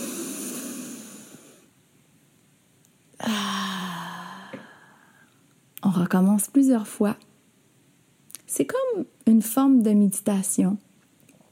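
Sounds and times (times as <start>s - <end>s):
slow deep breath taken to calm down: 0.0s - 1.7s, 3.2s - 5.4s
speech: 6.0s - 7.3s, 8.6s - 10.9s.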